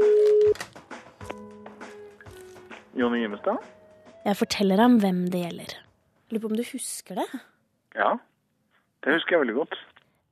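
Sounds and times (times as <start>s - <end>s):
outgoing phone call ringing tone: 0.0s - 0.6s
speech: 3.0s - 8.3s, 9.0s - 9.9s.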